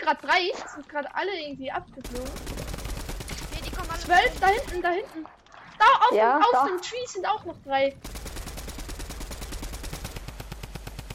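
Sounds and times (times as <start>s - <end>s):
speech: 0.0s - 2.6s, 4.0s - 8.2s
rapid automatic gunfire from a weapon in a video game: 2.0s - 5.0s, 8.0s - 11.1s.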